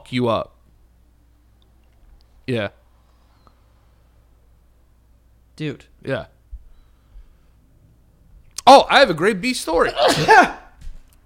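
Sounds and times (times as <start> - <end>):
speech: 0.1 - 0.6, 2.5 - 2.8, 5.6 - 6.4, 8.7 - 10.6
person sneezing: 9.9 - 10.8.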